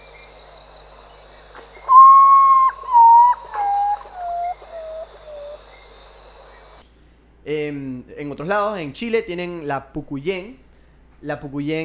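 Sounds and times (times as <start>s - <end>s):
urutau mournful whistled call: 0.0s - 6.8s
speech: 7.5s - 10.6s, 11.2s - 11.8s.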